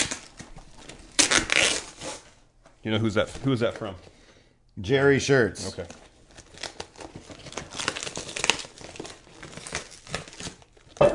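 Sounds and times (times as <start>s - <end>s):
packaging of a taped parcel holding shirts crinkling and tearing: 0.0s - 2.2s, 5.7s - 11.1s
speech: 2.8s - 4.2s, 4.8s - 6.0s.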